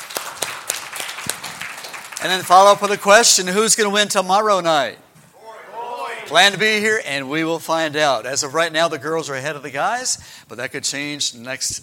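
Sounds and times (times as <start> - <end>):
crowd applauding team captains: 0.0 - 3.0
speech: 2.2 - 5.1, 6.3 - 11.8.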